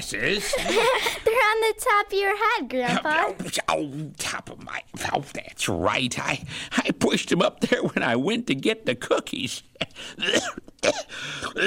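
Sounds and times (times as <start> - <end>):
speech: 0.0 - 11.6
laughter: 0.2 - 1.5
elderly man coughing with a lingering cough from the flu: 9.8 - 11.6.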